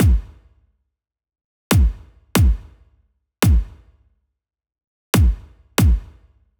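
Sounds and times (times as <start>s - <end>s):
kick drum: 0.0s - 0.4s, 1.7s - 2.8s, 3.4s - 3.9s, 5.2s - 6.2s.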